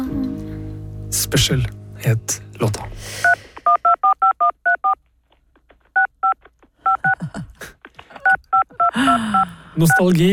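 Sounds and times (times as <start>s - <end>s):
speech: 1.1s - 3.4s, 9.8s - 10.3s
touch-tone dialing on an old-fashioned telephone: 3.2s - 5.0s, 6.0s - 7.2s, 8.2s - 10.1s.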